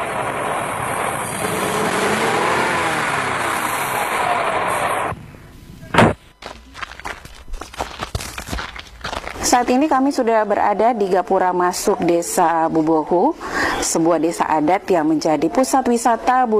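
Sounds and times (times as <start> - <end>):
vehicle driving with road and engine rumble on a narrow road: 0.0 - 9.6
knocks and shuffling: 5.6 - 9.9
speech: 9.5 - 16.5.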